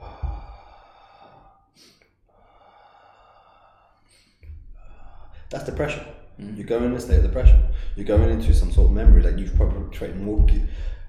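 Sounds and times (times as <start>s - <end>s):
person demonstrating quick inhales and slow exhales: 0.0s - 5.6s, 7.6s - 8.2s, 10.5s - 11.0s
speech: 5.5s - 11.0s.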